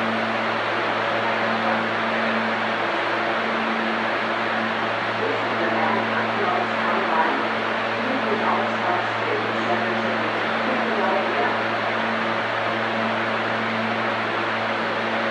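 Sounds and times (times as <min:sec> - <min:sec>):
low mechanical drone from ventilation or idling equipment on an underground train platform: 0:00.0 - 0:15.2
faint scattered voices: 0:05.2 - 0:11.7.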